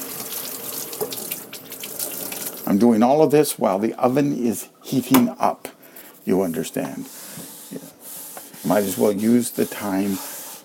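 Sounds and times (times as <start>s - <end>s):
tap water running over a cutting board in a kitchen sink: 0.0s - 2.7s
speech: 2.7s - 5.7s, 6.3s - 7.2s, 8.7s - 10.3s.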